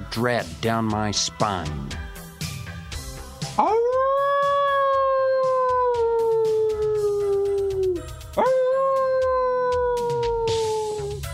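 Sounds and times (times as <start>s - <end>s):
speech: 0.2s - 2.0s
coyotes howling in a pasture at dusk: 3.6s - 11.3s.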